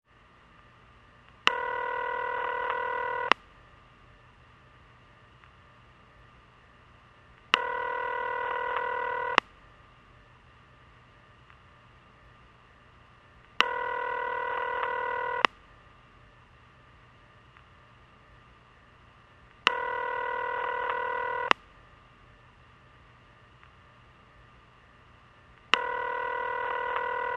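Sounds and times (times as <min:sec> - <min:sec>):
telephone call sound: 0:01.5 - 0:03.3, 0:07.6 - 0:09.4, 0:13.6 - 0:15.5, 0:19.7 - 0:21.6, 0:25.7 - 0:27.3.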